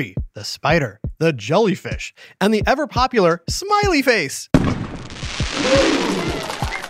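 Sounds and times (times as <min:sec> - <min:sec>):
speech: 0:00.0 - 0:04.7, 0:05.3 - 0:06.3
fireworks exploding with booming pops: 0:04.6 - 0:06.8
continuous loud crackling hiss of fireworks: 0:04.8 - 0:06.8.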